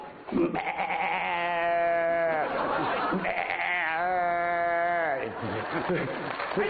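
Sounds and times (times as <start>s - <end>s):
human voice imitating kid goat and mother goat bleating: 0.3s - 2.5s, 3.2s - 5.3s
laughter: 1.8s - 6.6s.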